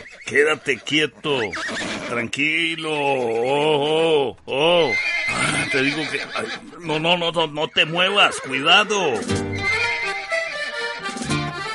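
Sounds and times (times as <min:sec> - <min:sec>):
agitated horse whinnying: 0:00.0 - 0:02.3, 0:03.1 - 0:07.0, 0:08.0 - 0:10.6
speech: 0:00.3 - 0:09.6.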